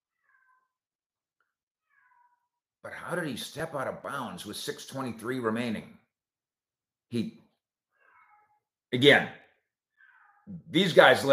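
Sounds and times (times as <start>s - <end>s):
cat meowing: 0.1s - 0.8s, 1.8s - 2.5s, 8.0s - 8.7s, 10.0s - 10.6s
speech: 2.8s - 6.0s, 7.1s - 7.4s, 8.9s - 9.4s, 10.5s - 11.3s.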